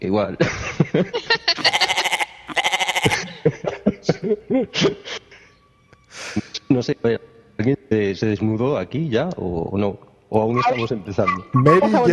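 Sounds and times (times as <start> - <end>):
speech: 0.0 - 1.8, 4.2 - 5.2, 6.8 - 12.1
laughter: 0.4 - 2.2, 3.0 - 5.5
goat bleating with loud quavering cries: 1.5 - 3.3.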